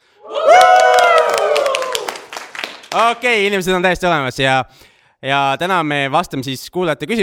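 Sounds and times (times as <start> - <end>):
live audience cheering and whooping in a hotel conference room: 0.1 - 2.7
live audience clapping in a hotel conference room: 0.3 - 3.6
speech: 3.0 - 7.2.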